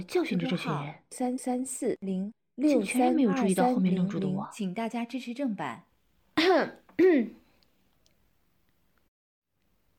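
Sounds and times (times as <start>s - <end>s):
speech: 0.0s - 7.4s
dry voiced coughs: 6.4s - 7.4s.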